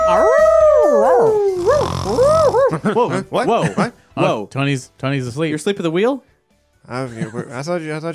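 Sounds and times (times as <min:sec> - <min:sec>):
person imitating a confused dog howling: 0:00.0 - 0:02.7
speech: 0:02.7 - 0:08.1.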